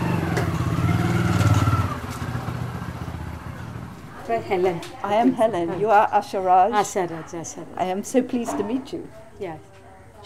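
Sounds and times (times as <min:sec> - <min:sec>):
motorbike engine rumbling and revving: 0:00.0 - 0:04.2
motorbike engine idling as the bike pulls up: 0:00.0 - 0:04.8
speech: 0:04.3 - 0:10.2.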